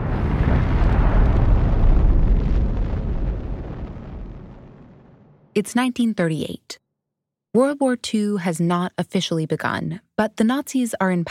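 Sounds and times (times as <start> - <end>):
massive explosion from a rapid nuclear chain reaction: 0.0 - 5.6
speech: 5.6 - 6.8, 7.6 - 11.2.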